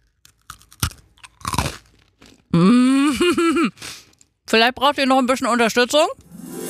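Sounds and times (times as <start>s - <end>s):
person biting and chewing a crisp spekulatius spiced cookie: 0.0s - 2.5s
person humming: 2.6s - 3.7s
speech: 3.4s - 3.9s, 4.5s - 6.2s.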